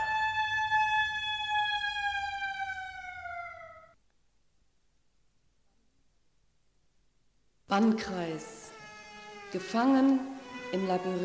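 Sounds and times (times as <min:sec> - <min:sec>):
siren wailing as a test alarm in a small town: 0:00.0 - 0:04.0, 0:08.1 - 0:11.2
speech: 0:07.7 - 0:08.6, 0:09.5 - 0:11.2.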